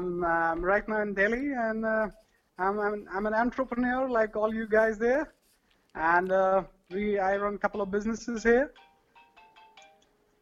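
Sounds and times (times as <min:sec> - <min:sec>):
speech: 0:00.0 - 0:05.4, 0:06.0 - 0:08.8
phone ringtone from an incoming call: 0:08.7 - 0:10.1.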